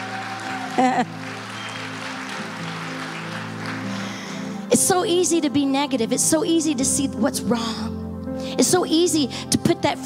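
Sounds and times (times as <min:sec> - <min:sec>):
crowd clapping: 0:00.0 - 0:04.7
speech: 0:00.8 - 0:01.3, 0:04.7 - 0:08.0, 0:08.6 - 0:10.0.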